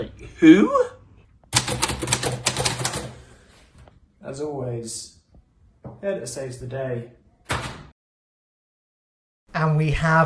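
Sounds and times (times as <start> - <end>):
speech: 0.0 - 0.9, 4.3 - 5.2, 6.0 - 7.2, 9.6 - 10.2
rapid typing on keys: 1.5 - 3.2.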